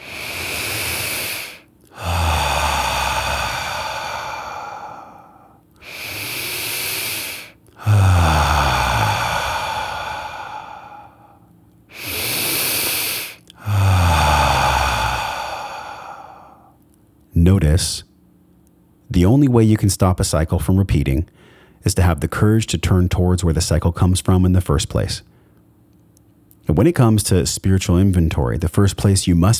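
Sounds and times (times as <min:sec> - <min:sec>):
deep breathing, slow breaths drawn in and let out: 0:00.0 - 0:16.8, 0:21.3 - 0:21.8
speech: 0:17.6 - 0:18.1, 0:19.1 - 0:25.3, 0:26.7 - 0:29.5.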